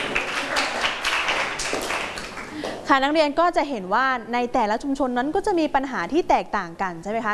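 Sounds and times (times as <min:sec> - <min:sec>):
students clapping for classmates in a classroom: 0:00.0 - 0:02.8
speech: 0:02.9 - 0:07.3.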